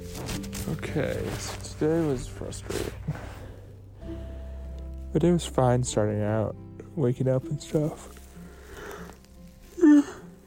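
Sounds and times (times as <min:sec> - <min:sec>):
speech: 0:00.7 - 0:03.2, 0:05.2 - 0:08.2
breathing: 0:02.7 - 0:04.7, 0:08.3 - 0:09.2
person yawning: 0:09.8 - 0:10.3.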